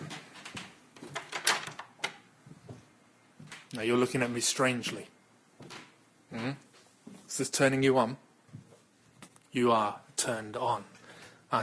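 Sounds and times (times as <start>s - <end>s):
door lock being turned: 1.1s - 2.2s
metallic door handle being jiggled: 1.1s - 2.2s
speech: 3.7s - 5.2s, 6.3s - 6.7s, 7.4s - 8.3s, 9.5s - 11.6s.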